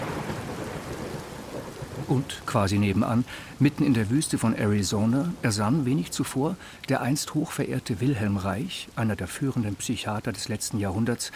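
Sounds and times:
deep rumble of thunder: 0:00.0 - 0:06.8
heavy rain shower: 0:00.0 - 0:11.3
speech: 0:02.1 - 0:11.3.

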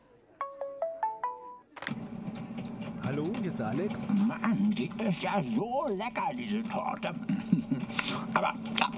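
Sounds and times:
phone ringing with a short electronic melody: 0:00.4 - 0:01.7
speech: 0:03.2 - 0:08.9
laughter: 0:07.0 - 0:08.9.

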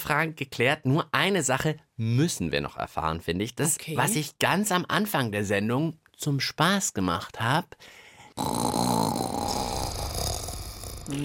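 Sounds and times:
speech: 0:00.0 - 0:09.3
person jokingly imitating a snore: 0:08.4 - 0:11.2.

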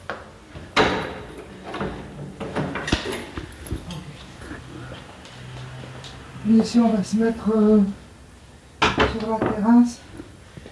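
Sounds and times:
wooden apartment door scraping and knocking as it swings: 0:00.6 - 0:03.4
speech: 0:06.5 - 0:08.0, 0:09.2 - 0:10.1.

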